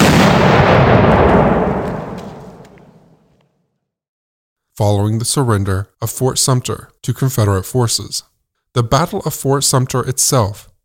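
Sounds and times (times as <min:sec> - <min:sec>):
cannon firing: 0:00.0 - 0:03.4
speech: 0:04.8 - 0:10.7.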